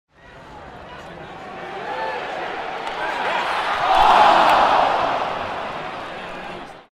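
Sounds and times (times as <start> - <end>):
football fans groaning at a missed shot on goal: 2.9 - 6.8.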